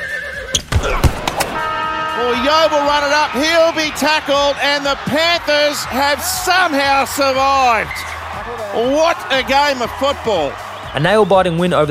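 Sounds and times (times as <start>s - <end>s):
horse whinnying: 0.0s - 1.0s
speech: 2.2s - 11.8s.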